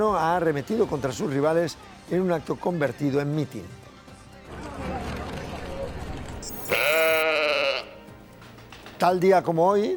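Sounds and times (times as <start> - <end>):
speech: 0.0 - 3.9, 9.0 - 9.9
single sheep bleat: 6.5 - 8.1.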